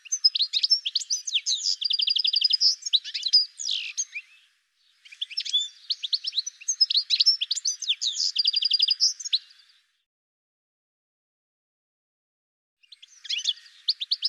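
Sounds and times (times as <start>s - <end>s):
bird calls and chirps: 0.0s - 10.0s, 12.8s - 14.2s.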